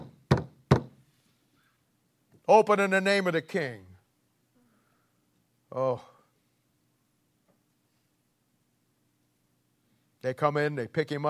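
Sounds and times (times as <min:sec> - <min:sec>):
firm knocks on a wooden door: 0:00.0 - 0:01.0
speech: 0:02.5 - 0:03.9, 0:05.8 - 0:06.1, 0:10.2 - 0:11.2.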